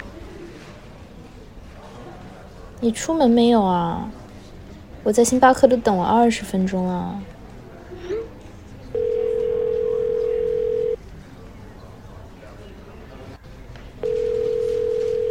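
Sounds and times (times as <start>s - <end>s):
low murmur: 0.0s - 15.2s
speech: 2.8s - 4.2s, 5.0s - 7.3s
phone ringback tone: 9.0s - 11.0s, 14.0s - 15.2s.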